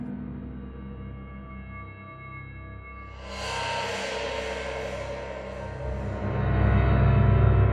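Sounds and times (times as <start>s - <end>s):
orchestral ambience: 3.1s - 7.6s.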